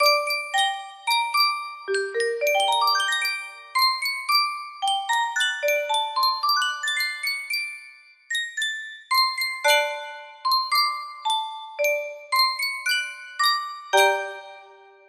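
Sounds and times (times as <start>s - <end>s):
Sankyo music box playing blues: 0.0s - 14.5s.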